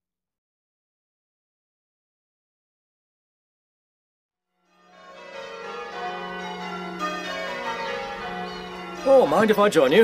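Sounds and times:
church bells rung by bell ringers in change-ringing: 4.6s - 10.0s
speech: 9.1s - 10.0s.

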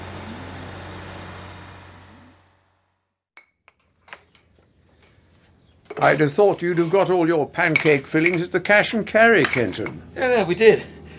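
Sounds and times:
lorry's heavy engine rumbling: 0.0s - 3.1s, 4.3s - 11.1s
metallic clanks and knocks of a lorry pulling up: 5.9s - 8.6s, 9.3s - 10.1s
speech: 6.0s - 11.0s.

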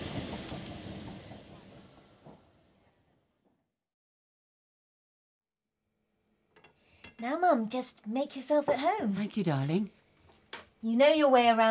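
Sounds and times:
train rumbling and hissing alongside a platform as it slows to a stop: 0.0s - 3.1s
speech: 7.2s - 10.0s, 10.8s - 11.6s.

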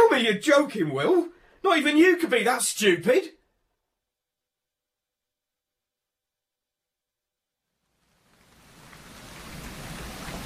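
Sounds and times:
speech: 0.2s - 3.4s
steady rain hissing: 7.8s - 10.4s.

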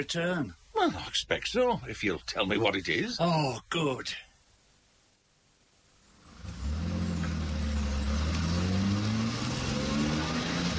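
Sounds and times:
speech: 0.0s - 4.3s
car engine starting up and revving while accelerating: 6.2s - 10.7s.

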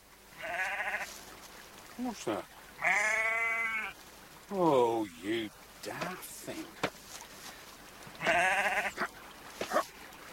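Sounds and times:
quiet outdoor background: 0.0s - 10.3s
sheep bleating: 0.4s - 1.1s, 2.8s - 4.0s, 8.2s - 9.1s
speech: 2.0s - 2.9s, 4.5s - 6.9s, 8.2s - 9.0s.

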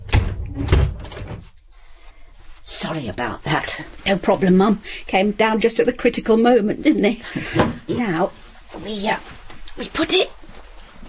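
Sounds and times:
cupboard door under the stairs opening and closing: 0.0s - 1.6s, 7.4s - 8.1s
speech: 2.7s - 10.4s.

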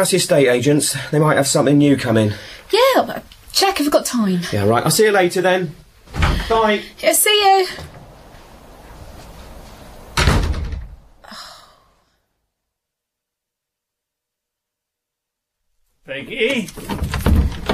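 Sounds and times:
speech: 0.0s - 8.0s, 16.2s - 17.6s
front door shutting with a thud and rattle: 6.0s - 11.4s, 16.4s - 17.7s.

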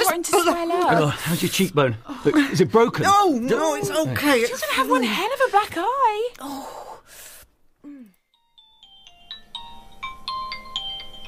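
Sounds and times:
speech: 0.1s - 7.2s
mobile phone ringtone with rising electronic melody: 8.4s - 11.2s.

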